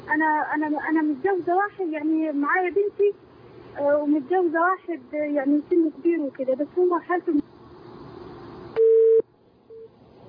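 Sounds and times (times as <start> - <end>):
speech: 0.1 - 7.5
telephone busy tone after a call disconnects: 8.8 - 9.9.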